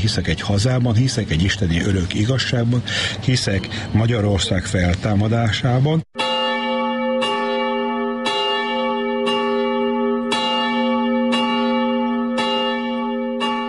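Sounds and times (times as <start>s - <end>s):
speech: 0.0s - 6.2s
church bell tolling: 6.2s - 13.6s.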